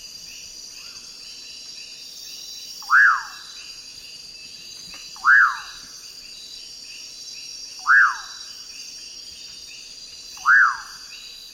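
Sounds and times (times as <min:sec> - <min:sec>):
common pauraque whistled call: 0:02.7 - 0:03.8, 0:05.0 - 0:06.0, 0:07.7 - 0:08.6, 0:10.3 - 0:11.5.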